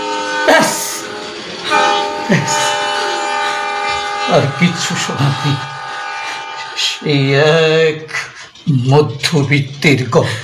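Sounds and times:
approaching passenger train blowing its whistle: 0.0 - 7.1
rumbling rail noise of passenger train: 0.0 - 9.7
speech: 2.3 - 2.7, 4.3 - 5.7, 6.8 - 10.4.

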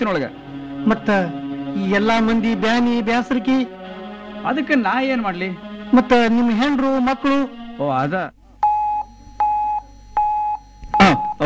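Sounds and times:
speech: 0.0 - 3.8, 4.4 - 8.4
electronic alert beeps for an urgent incoming message: 8.6 - 11.4.

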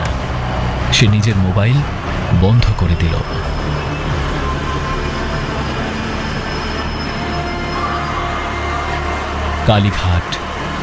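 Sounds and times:
underground metro train running through Kolkata toward Dakshineswar: 0.0 - 10.8
speech: 0.9 - 4.2, 9.6 - 10.5
faint high metro train wheel squeal: 1.6 - 10.8.

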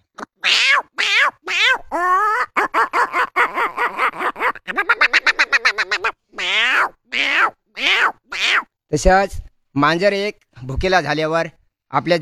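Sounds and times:
voice imitating the call of the greater racket-tailed drongo: 0.0 - 8.7
speech: 9.0 - 12.1.

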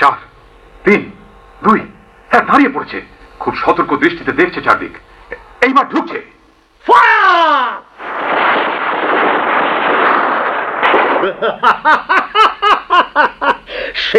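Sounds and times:
speech: 0.0 - 7.8, 11.2 - 12.2, 13.2 - 14.1
short evenly spaced pulses: 0.0 - 14.1
burst of gunfire during a military ambush: 8.0 - 11.8
laughter: 11.1 - 14.1.

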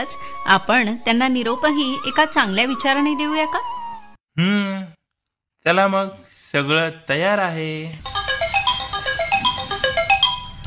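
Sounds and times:
speech: 0.0 - 3.7, 4.4 - 5.0, 5.6 - 8.2
mobile phone ringtone: 8.0 - 10.6.

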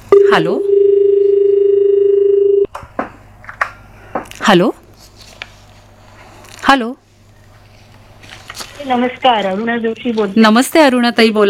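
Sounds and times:
steady unbroken telephone line tone for an incoming caller: 0.1 - 2.7
speech: 0.3 - 0.7, 4.5 - 4.8, 6.7 - 7.0, 8.8 - 11.4.

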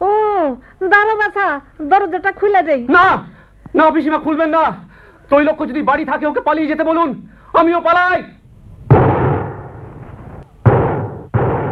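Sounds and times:
speech: 0.8 - 8.4
loud gunshots with long decaying rumble: 8.9 - 11.6.

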